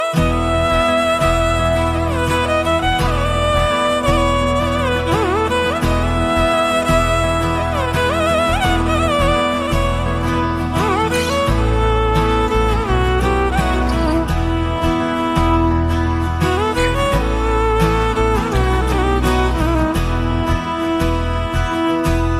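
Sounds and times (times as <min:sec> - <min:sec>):
90s guitar ringtone: 0:00.0 - 0:22.3.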